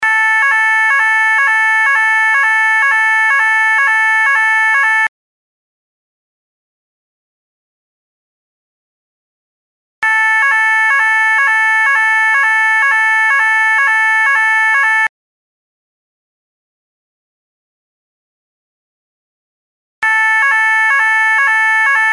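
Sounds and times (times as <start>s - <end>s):
siren for weather-related interruption of play: 0.0s - 5.1s, 10.0s - 15.1s, 20.0s - 22.1s.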